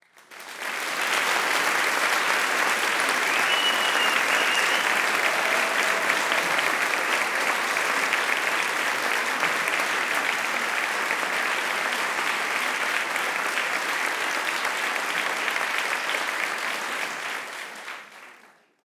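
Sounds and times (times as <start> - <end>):
long applause in a classroom: 0.0 - 18.8
whistle in a classroom: 3.3 - 5.1.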